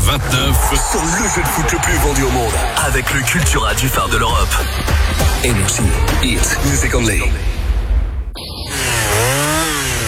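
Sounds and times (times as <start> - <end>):
speech: 0.1 - 7.6
chainsaw engine revving: 8.6 - 10.0.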